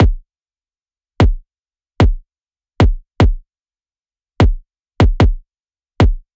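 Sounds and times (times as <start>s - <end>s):
future bass kick drum: 0.0s - 0.2s, 1.2s - 1.4s, 2.8s - 3.4s, 4.4s - 5.4s, 6.0s - 6.3s.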